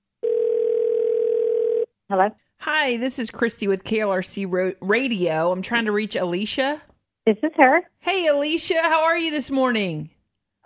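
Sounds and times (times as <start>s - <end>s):
telephone dial tone as a call is placed: 0.2s - 1.9s
speech: 2.1s - 10.6s.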